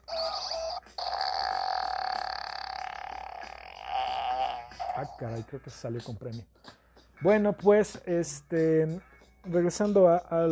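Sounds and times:
toy robot electronic fart: 0.1 - 5.1
speech: 5.0 - 6.6, 7.2 - 10.4.

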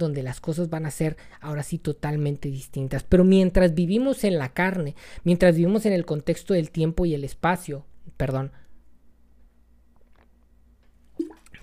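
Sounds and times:
speech: 0.0 - 8.6
person sipping and swallowing water: 9.9 - 10.5, 11.1 - 11.6.

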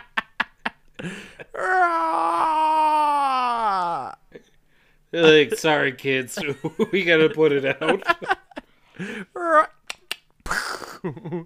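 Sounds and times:
speech: 1.0 - 2.5, 5.1 - 8.4, 9.0 - 9.8, 11.0 - 11.4
voice imitating a Halloween decoration with a dying battery: 1.5 - 4.2, 9.3 - 9.8
laughter: 5.2 - 8.6.

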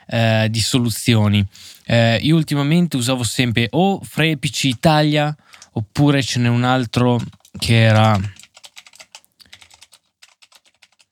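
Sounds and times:
speech: 0.1 - 8.4
rapid typing on a computer keyboard: 4.7 - 5.8, 7.2 - 11.1.

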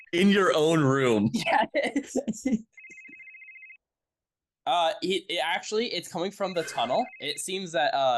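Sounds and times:
speech: 0.1 - 2.8, 4.7 - 8.1
laughter: 1.2 - 2.6, 6.5 - 7.1
phone ringing with a warbling electronic tone: 2.7 - 3.8, 6.6 - 7.6.

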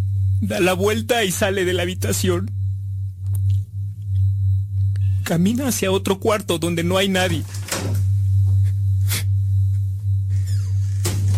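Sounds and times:
steady low hum: 0.0 - 11.3
speech: 0.4 - 2.6, 5.3 - 8.0
door closing: 7.3 - 8.1, 10.3 - 11.3.

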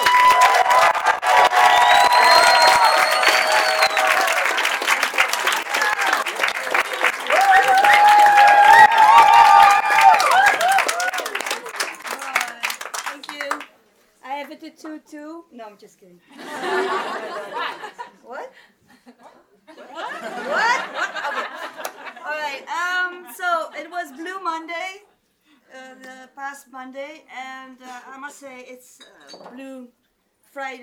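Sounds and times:
scattered cheers and whoops from a crowd: 0.0 - 11.8
crowd applauding loudly: 0.0 - 13.7
laughter: 16.3 - 18.2, 19.0 - 22.4
speech: 30.6 - 30.8.

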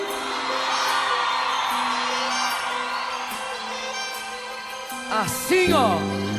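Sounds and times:
large crowd whooping and cheering: 0.0 - 4.9
speech: 5.2 - 6.2.

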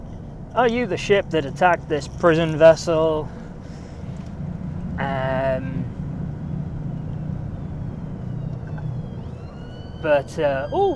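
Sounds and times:
road traffic rumble: 0.0 - 10.9
speech: 0.5 - 3.4, 10.0 - 10.9
ambulance siren: 5.2 - 10.9.

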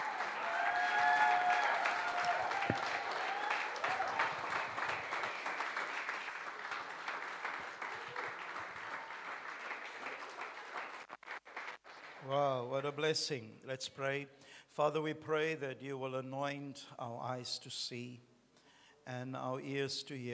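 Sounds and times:
church congregation applauding during a service: 0.0 - 12.8
speech: 12.3 - 18.3, 19.1 - 20.3.

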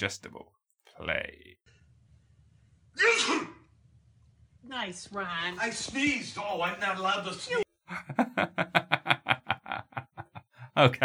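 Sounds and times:
speech: 0.0 - 1.8, 3.0 - 3.5, 4.6 - 9.1, 10.8 - 11.0
man sneezing: 3.0 - 3.6
rhythmic pulsing laughter: 7.9 - 10.5.

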